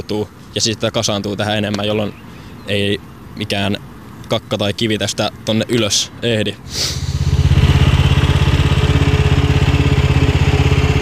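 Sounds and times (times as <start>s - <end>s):
speech: 0.0s - 7.0s
small motor of beach sand-cleaning machine rattling: 5.3s - 11.0s.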